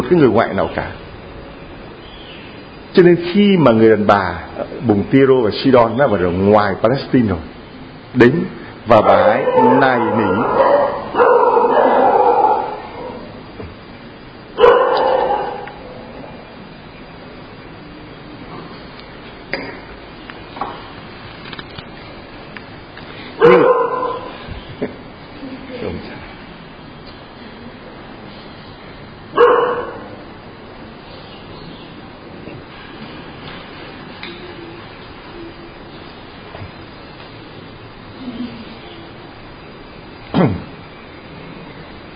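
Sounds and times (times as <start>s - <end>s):
speech: 0.1s - 1.0s, 3.0s - 10.6s
dog barking: 9.0s - 13.3s, 14.6s - 15.8s, 23.4s - 24.4s, 29.4s - 30.2s.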